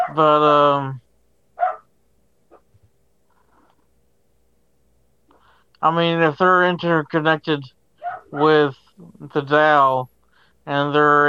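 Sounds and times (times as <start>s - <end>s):
dog barking: 0.0s - 0.2s, 1.6s - 1.9s, 8.0s - 8.6s
speech: 0.1s - 1.0s, 5.8s - 11.2s.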